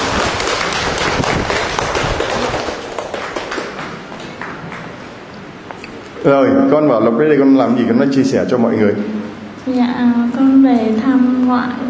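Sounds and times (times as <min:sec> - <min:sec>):
audience clapping: 0:00.0 - 0:05.2
speech: 0:06.2 - 0:11.8.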